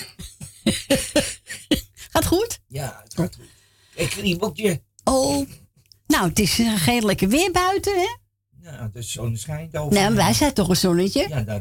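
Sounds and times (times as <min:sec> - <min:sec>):
person coughing harshly: 0:00.0 - 0:02.2
speech: 0:00.7 - 0:01.3, 0:03.2 - 0:03.4, 0:04.0 - 0:05.6, 0:06.2 - 0:11.5.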